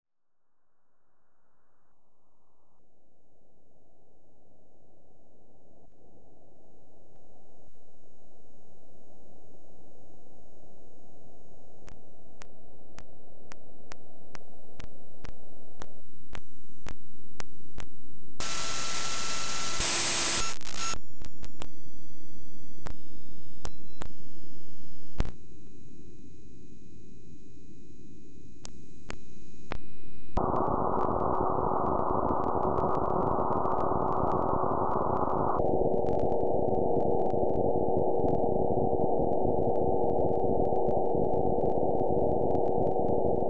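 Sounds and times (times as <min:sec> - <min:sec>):
street microwave radio noise: 0:10.4 - 0:25.4, 0:30.4 - 0:43.4.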